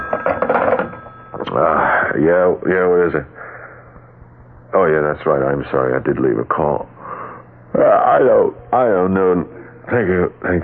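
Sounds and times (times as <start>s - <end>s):
telephone ringing: 0.0s - 1.9s
speech: 1.5s - 3.4s, 4.7s - 7.0s, 7.8s - 10.6s.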